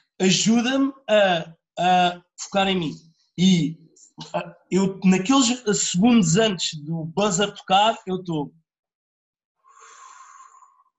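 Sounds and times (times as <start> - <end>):
speech: 0.2 - 8.6
slow drawn-out breath: 9.7 - 10.9.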